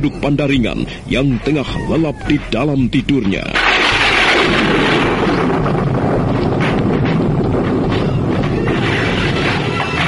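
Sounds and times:
speech: 0.0 - 4.9
booming thunder after lightning over a sleeping village: 3.6 - 9.9.

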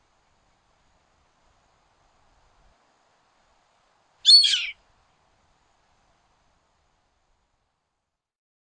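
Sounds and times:
Yellow-headed Caracara call, Milvago chimachima chimachima: 4.3 - 4.8.

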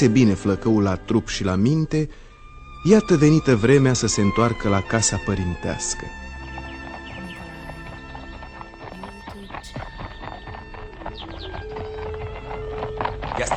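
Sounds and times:
speech: 0.0 - 2.2, 2.8 - 6.2
stallions' hooves clip-clopping at a trot drawing a carriage through a forest: 11.3 - 13.5.

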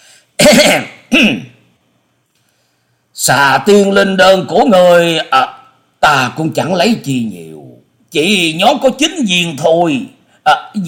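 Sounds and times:
dry throat clearing: 0.4 - 1.6
speech: 0.5 - 1.5, 3.2 - 10.8.

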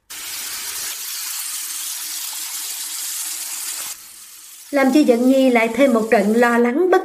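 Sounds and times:
water gushing from a bathroom shower: 0.0 - 6.9
speech: 4.7 - 7.0.

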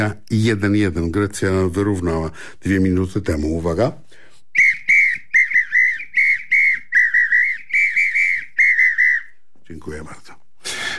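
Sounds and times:
speech: 0.0 - 4.1, 9.7 - 10.4
samba whistle blown in quick rhythmic blasts: 4.5 - 9.4.

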